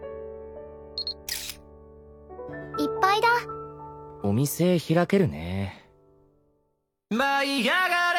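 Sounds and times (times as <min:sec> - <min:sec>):
camera electronic beeps: 0:01.0 - 0:01.6
speech: 0:04.3 - 0:05.8, 0:07.1 - 0:08.0.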